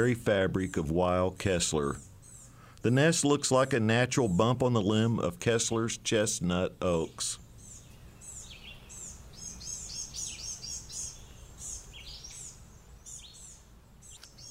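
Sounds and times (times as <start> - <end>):
speech: 0.0 - 2.1, 2.8 - 7.4
low background noise: 0.0 - 14.4
Blue-gray Gnatcatcher family group calling excitedly on Kessler Mountain: 1.8 - 2.8, 7.0 - 14.4.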